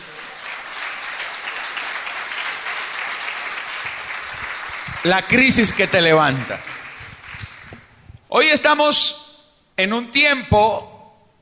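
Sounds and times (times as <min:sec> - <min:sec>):
congregation applauding: 0:00.0 - 0:08.0
speech: 0:05.0 - 0:06.7, 0:08.4 - 0:09.2, 0:09.8 - 0:10.9.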